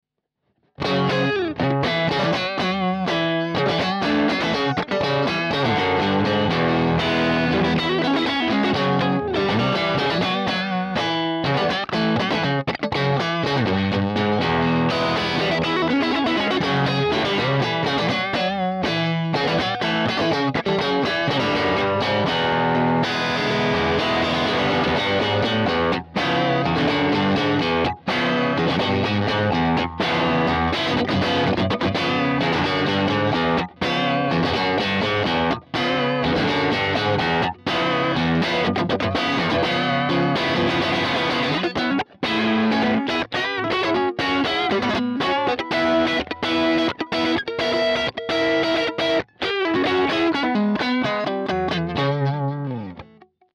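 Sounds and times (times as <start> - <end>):
Stratocaster electric guitar: 0.6 - 53.5.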